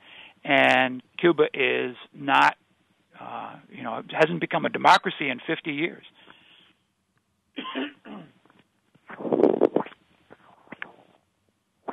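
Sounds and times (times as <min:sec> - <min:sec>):
speech: 0:00.5 - 0:02.6, 0:03.2 - 0:06.3
person coughing and clearing throat: 0:07.6 - 0:08.4.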